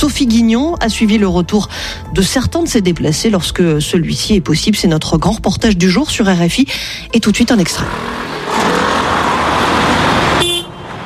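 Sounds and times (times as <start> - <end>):
speech: 0.0 - 8.8
dense roar of road traffic from many cars: 0.0 - 11.0
short car horn toot: 9.6 - 11.0.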